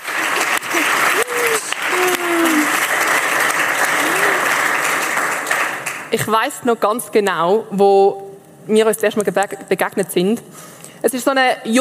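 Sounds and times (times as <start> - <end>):
crowd applause: 0.0 - 6.2
faint voices and shouts: 0.7 - 2.8
speech: 6.1 - 11.7.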